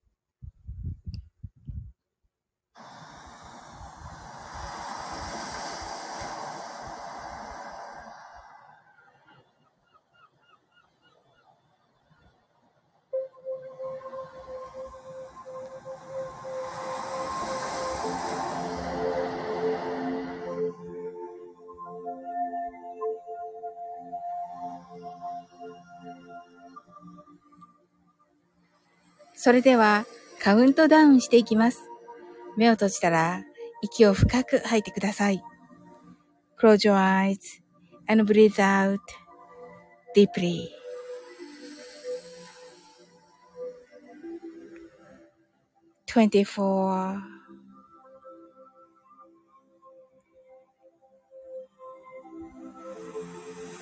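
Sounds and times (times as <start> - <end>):
underwater ocean surges for meditation: 3.0 - 9.2, 15.8 - 20.7
long wavering tonal calls: 3.0 - 11.5, 13.1 - 26.8, 40.7 - 44.7
speech: 29.4 - 31.9, 32.6 - 35.5, 36.6 - 39.2, 40.2 - 40.8, 46.1 - 47.3.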